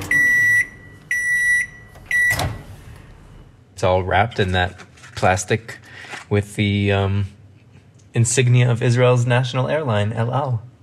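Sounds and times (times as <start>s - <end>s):
microwave oven beeping: 0.0s - 3.3s
faint microwave oven hum: 0.0s - 10.8s
speech: 3.8s - 7.4s, 8.2s - 10.7s.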